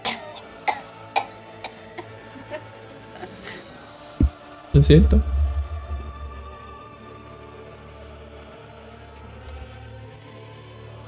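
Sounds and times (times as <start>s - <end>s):
person giving short dry coughs: 0.0s - 2.1s
speech: 4.8s - 5.4s.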